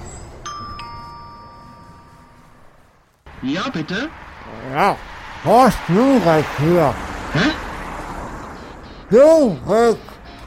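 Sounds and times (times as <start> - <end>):
doorbell chiming: 0.4 - 2.8
speech: 3.4 - 7.6, 9.1 - 10.1.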